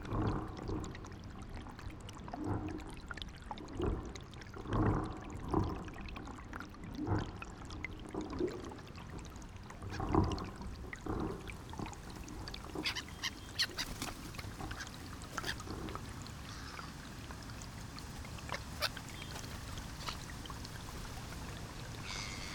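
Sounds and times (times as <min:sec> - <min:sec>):
underwater swirling and sloshing in a loch: 0:00.0 - 0:22.5
flock of whooper swans calling across a loch: 0:12.0 - 0:22.5.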